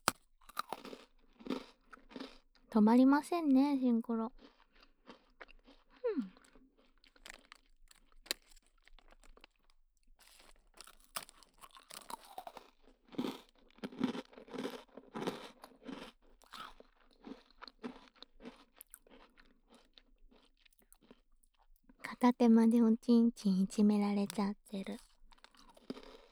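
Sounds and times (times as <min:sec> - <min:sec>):
crunchy cookie being chewed: 0:00.0 - 0:02.8, 0:03.8 - 0:22.4, 0:23.8 - 0:26.2
speech: 0:02.8 - 0:04.5, 0:22.4 - 0:25.1.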